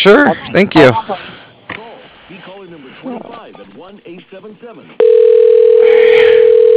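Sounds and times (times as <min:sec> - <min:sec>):
speech: 0:00.0 - 0:01.3, 0:02.3 - 0:06.7
steady telephone tone as an office call is transferred to voicemail: 0:05.0 - 0:06.7.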